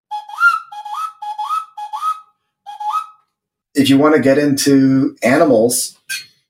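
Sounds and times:
quail whistle being blown: 0.1 - 3.2
speech: 3.8 - 6.2.

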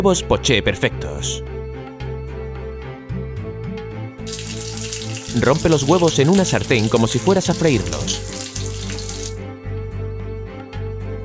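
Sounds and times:
speech: 0.0 - 1.5, 5.3 - 8.3
water pouring into a frying pan with cracked eggs for poached eggs: 4.2 - 9.4.

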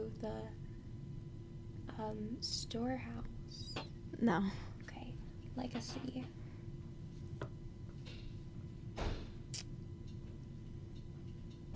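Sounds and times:
steady low hum: 0.0 - 11.7
speech: 2.0 - 4.7, 5.6 - 6.4
heavy door swinging shut: 9.0 - 9.3.

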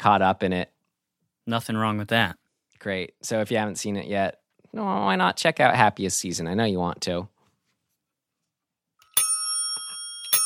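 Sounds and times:
speech: 0.0 - 0.7, 1.5 - 7.3
bicycle bell ringing: 9.0 - 10.4.

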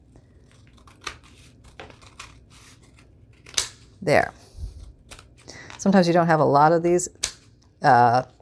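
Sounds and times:
scissors trimming paper: 0.4 - 3.8, 4.8 - 5.4
speech: 4.0 - 4.4, 5.8 - 7.2, 7.8 - 8.4.

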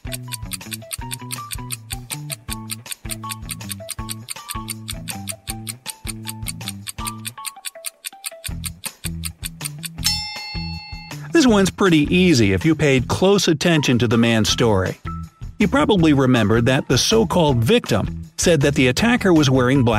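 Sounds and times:
clock ticking as a countdown: 0.0 - 10.1
speech: 11.4 - 15.0, 15.6 - 19.9.

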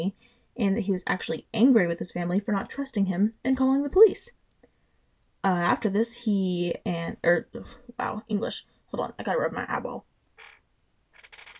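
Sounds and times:
speech: 0.0 - 4.4, 5.4 - 10.1
chair creaking: 10.4 - 10.6, 11.2 - 11.5.

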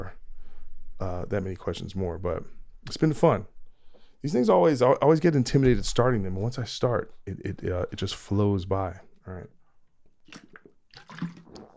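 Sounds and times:
speech: 1.0 - 3.5, 4.2 - 9.6, 10.3 - 11.4
person sipping water: 10.0 - 11.7
soft slurps of water: 10.0 - 11.7
gulping swallow of water: 10.2 - 11.7.

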